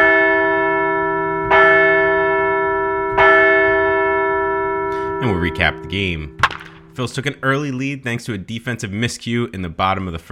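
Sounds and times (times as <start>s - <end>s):
large bell ringing: 0.0s - 7.5s
speech: 5.2s - 10.3s.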